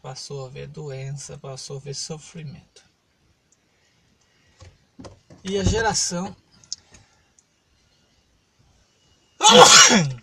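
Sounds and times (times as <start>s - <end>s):
speech: 0.1s - 2.9s, 5.4s - 6.4s, 9.5s - 10.2s
person sneezing: 9.4s - 10.2s.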